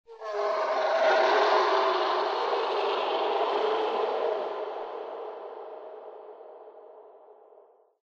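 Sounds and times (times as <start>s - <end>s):
yeti animal call in a lair: 0.1s - 5.8s.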